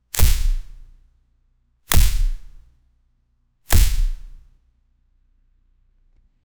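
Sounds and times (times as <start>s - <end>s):
fighting: 0.2s - 0.8s, 1.9s - 2.6s, 3.7s - 4.4s
punch hit: 0.2s - 0.9s, 1.9s - 2.6s, 3.7s - 4.4s.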